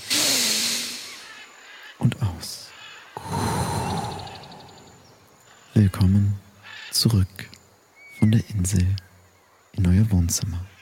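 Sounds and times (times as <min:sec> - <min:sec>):
deep breathy inhalation at the end of a guided relaxation: 0:03.2 - 0:05.2
speech: 0:05.8 - 0:07.6, 0:08.2 - 0:09.1, 0:09.8 - 0:10.7.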